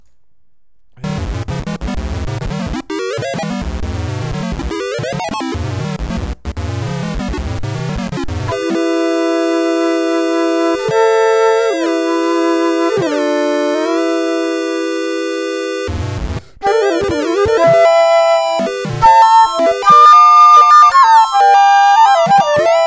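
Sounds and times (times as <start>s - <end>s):
flute chords: 8.5s - 22.8s.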